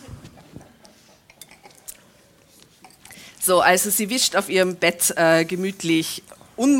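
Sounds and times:
glasses clinking in a toast: 1.3 - 2.0
speech: 3.4 - 6.7.

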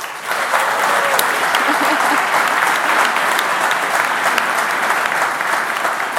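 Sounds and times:
large live audience applauding loudly: 0.0 - 6.1
laughter: 0.5 - 3.6.

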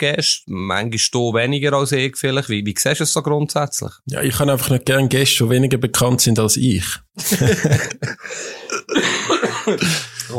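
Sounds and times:
speech: 0.0 - 10.3
laughter: 7.2 - 10.3
person coughing harshly and raspily: 8.1 - 10.3.

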